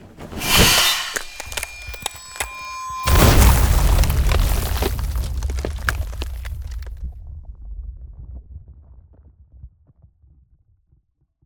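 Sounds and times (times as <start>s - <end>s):
ice spell barrier effect: 0.3s - 6.9s.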